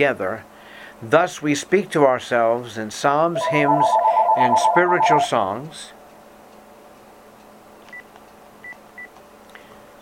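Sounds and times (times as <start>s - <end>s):
speech: 0.0s - 6.0s
telephone tones from a phone call: 3.4s - 5.4s.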